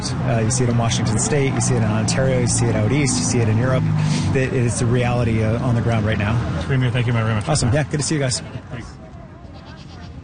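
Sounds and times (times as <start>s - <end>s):
steady noise: 0.0s - 10.2s
speech: 0.2s - 8.9s
goat bleating in a convention center parking lot: 9.5s - 10.2s.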